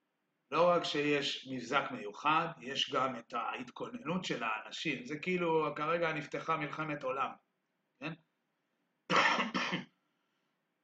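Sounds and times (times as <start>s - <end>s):
speech: 0.5s - 7.4s, 8.0s - 8.2s
person coughing: 9.1s - 10.0s.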